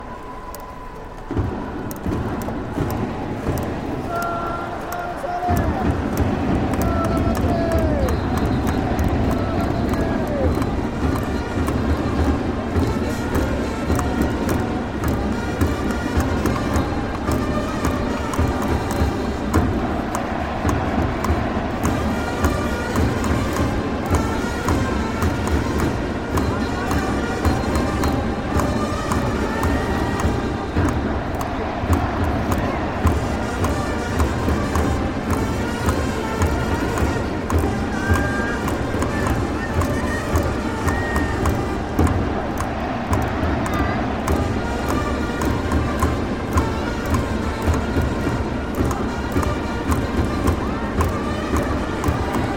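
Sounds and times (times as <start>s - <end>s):
baseball game in Japan: 0.0s - 52.5s.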